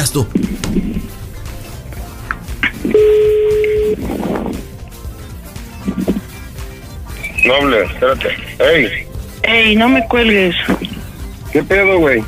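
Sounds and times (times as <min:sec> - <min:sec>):
speech: 0:00.0 - 0:01.2, 0:07.4 - 0:10.8, 0:11.5 - 0:12.2
telephone beep while redialing a number: 0:02.8 - 0:04.0, 0:09.8 - 0:10.6.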